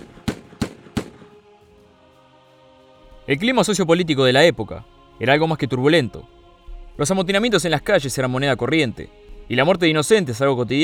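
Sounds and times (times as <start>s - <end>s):
revolver gunshots: 0.0s - 1.3s
speech: 3.3s - 6.4s, 7.0s - 10.8s.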